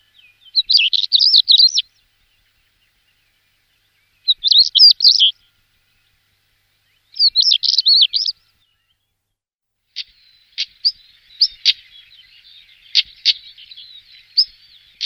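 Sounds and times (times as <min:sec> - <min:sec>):
stonechat singing squeaky warbled phrases: 0:00.6 - 0:01.8, 0:04.3 - 0:05.3, 0:07.2 - 0:08.3.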